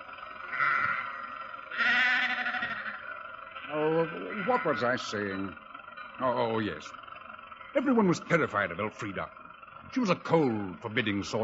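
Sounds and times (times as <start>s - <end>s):
sheep bleating on the road: 0.3s - 5.6s
speech: 3.7s - 5.6s, 6.2s - 7.0s, 7.7s - 11.4s.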